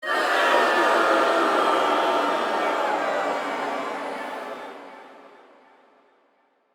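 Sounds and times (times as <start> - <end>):
crowd booing: 0.0 - 4.8.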